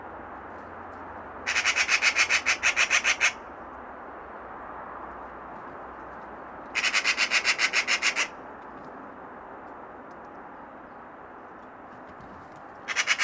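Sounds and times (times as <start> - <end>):
Eurasian magpie (Pica pica) rattling chatter: 1.5 - 3.4, 6.8 - 8.3, 12.9 - 13.2.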